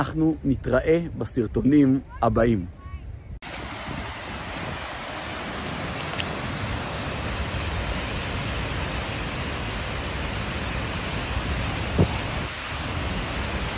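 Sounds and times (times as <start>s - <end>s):
speech: 0.0s - 2.8s
wind: 0.0s - 13.7s
waterfall in Iceland roaring: 3.4s - 13.7s.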